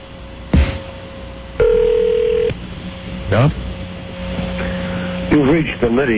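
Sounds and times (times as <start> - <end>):
faint steady hum on a telephone line: 0.0 - 6.1
loud steady electronic ringing tone on a telephone line during an outgoing call: 1.6 - 2.6
speech: 3.3 - 3.6, 5.4 - 6.1.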